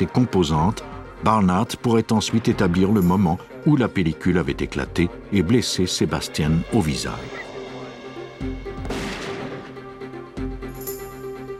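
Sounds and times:
speech: 0.0 - 7.5
loud gunshot from a test firing: 8.8 - 9.8.

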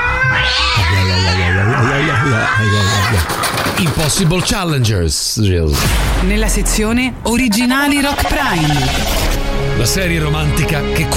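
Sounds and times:
defensive cat yowling and caterwauling: 0.0 - 3.4
speech: 2.6 - 11.1.

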